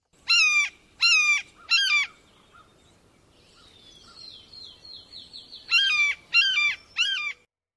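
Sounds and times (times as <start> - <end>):
blue jay giving harsh raspy screams: 0.3 - 2.2, 5.7 - 7.5.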